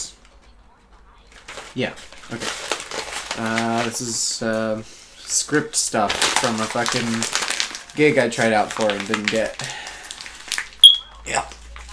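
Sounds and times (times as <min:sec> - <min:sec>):
speech: 0:01.8 - 0:02.6, 0:03.4 - 0:09.8
smoke detector chirp: 0:10.8 - 0:11.1.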